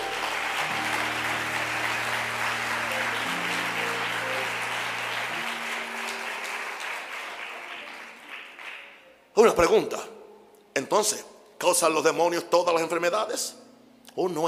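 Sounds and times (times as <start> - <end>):
sustained low keyboard chords: 0.0 - 7.2
crowd applauding loudly: 0.0 - 9.1
speech: 9.4 - 10.2, 10.8 - 13.6, 14.2 - 14.4.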